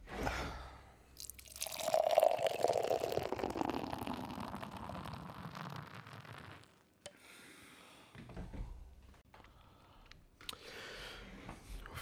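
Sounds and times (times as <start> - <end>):
IPA beer glugging and splashing as it pours into a glass: 1.2 - 6.7.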